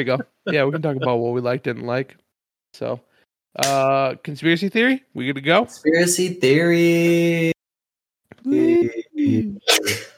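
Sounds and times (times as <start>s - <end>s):
speech: 0.0s - 7.5s, 8.4s - 10.0s
person sneezing: 8.6s - 10.1s.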